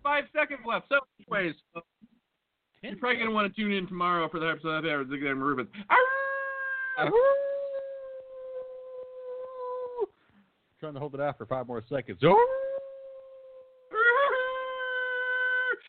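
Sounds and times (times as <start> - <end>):
speech: 0.2 - 1.9, 2.8 - 6.2, 6.9 - 7.5, 10.8 - 12.6
person howling like a dog: 5.9 - 10.1, 12.3 - 15.8.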